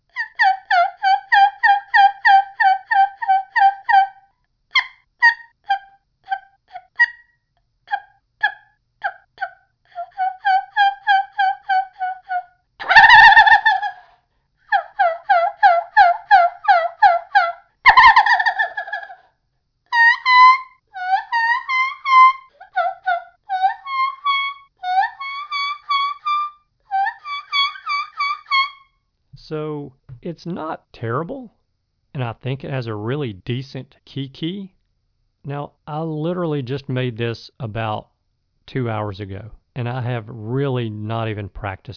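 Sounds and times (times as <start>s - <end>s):
homemade turkey call made from a plastic pill bottle yelping: 0.1s - 4.2s, 4.8s - 14.1s, 14.7s - 19.3s, 19.9s - 29.0s
harsh loud turkey call squawks: 0.1s - 19.3s, 19.9s - 29.0s
speech: 30.3s - 31.6s, 32.2s - 34.8s, 35.4s - 38.1s, 38.7s - 41.9s.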